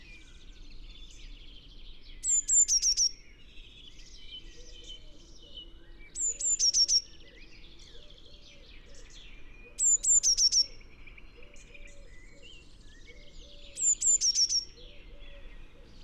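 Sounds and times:
other birds twittering: 0.0s - 16.0s
Eurasian blue tit Cyanistes caeruleus calling: 2.2s - 3.2s, 6.2s - 7.1s, 9.8s - 10.8s, 13.7s - 16.0s.

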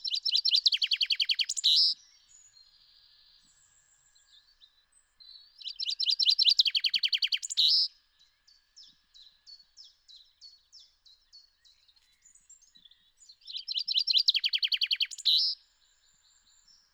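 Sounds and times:
common chaffinch Fringilla coelebs singing: 0.0s - 2.0s, 5.6s - 7.9s, 12.8s - 15.6s.

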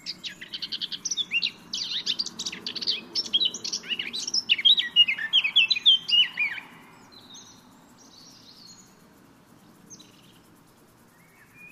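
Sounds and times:
Eurasian blackcap song, Sylvia atricapilla warbling: 0.0s - 8.9s.

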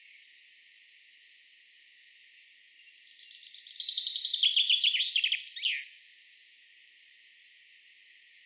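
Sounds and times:
common chaffinch Fringilla coelebs singing descending run: 3.0s - 5.8s.

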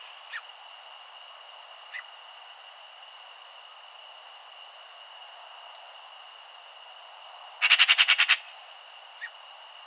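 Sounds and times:
Eurasian magpie giving a harsh rattling chatter: 7.6s - 8.4s.

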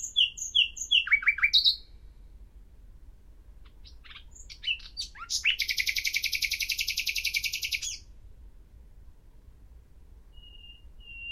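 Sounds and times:
common nightingale singing, Luscinia megarhynchos: 0.0s - 2.4s, 3.6s - 8.2s, 10.3s - 11.2s.

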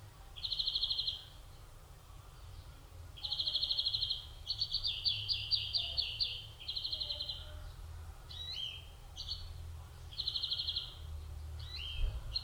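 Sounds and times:
European greenfinch Chloris chloris song of ringing trills: 0.4s - 1.4s, 3.2s - 7.5s, 8.3s - 11.0s, 11.6s - 12.4s.

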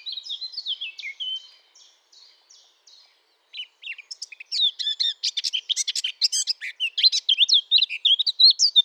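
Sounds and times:
Eurasian blackcap Sylvia atricapilla song: 0.0s - 8.8s.

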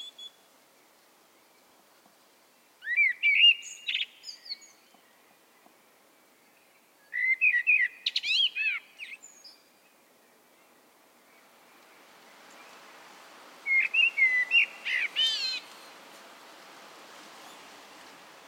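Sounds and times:
common blackbird Turdus merula singing: 2.8s - 5.1s, 6.5s - 9.6s, 13.7s - 15.7s.

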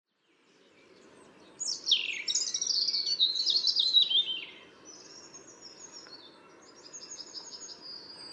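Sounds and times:
European robin singing: 0.1s - 8.3s.

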